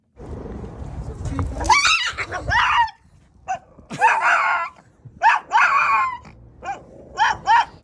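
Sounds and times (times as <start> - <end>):
3-year-old Shih Tzu screaming and snarling on meeting another dog: 1.6 - 7.8.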